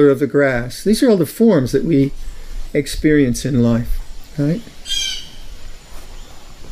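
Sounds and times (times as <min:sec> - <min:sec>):
speech: 0:00.0 - 0:05.0
steady noise: 0:00.0 - 0:06.6
blue jay call: 0:04.8 - 0:05.6.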